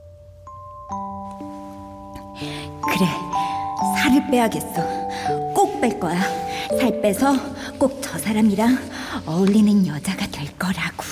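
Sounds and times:
soft bell chimes ringing: 0:00.0 - 0:07.3
speech: 0:02.4 - 0:03.4, 0:04.0 - 0:11.1.

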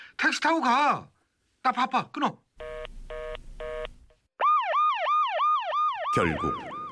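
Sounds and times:
speech: 0:00.2 - 0:02.4, 0:06.2 - 0:06.8
ambulance siren heading to a hospital: 0:04.4 - 0:06.9.

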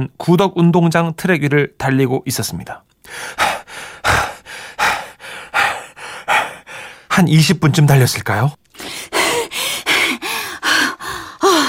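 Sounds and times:
speech: 0:00.0 - 0:03.5, 0:07.2 - 0:09.2
woman panting heavily while running at full speed on a stadium track: 0:03.0 - 0:07.2, 0:08.7 - 0:11.6.

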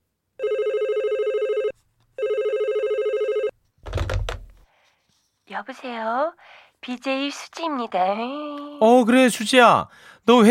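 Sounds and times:
telephone ringback tones on an outgoing call: 0:00.4 - 0:03.6
speech: 0:05.5 - 0:10.4.

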